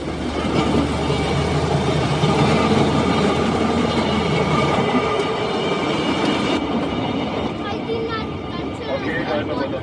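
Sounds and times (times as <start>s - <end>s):
train riding at about 40 to 45 km/h: 0.0s - 9.8s.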